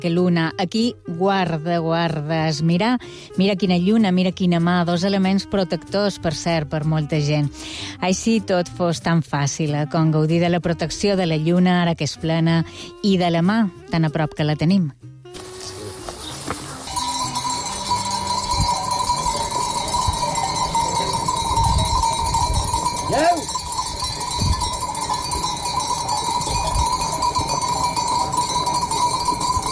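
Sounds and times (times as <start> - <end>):
speech: 0.0 - 15.4
sheep bells jingling in a moving flock in Felanitx: 15.4 - 29.7.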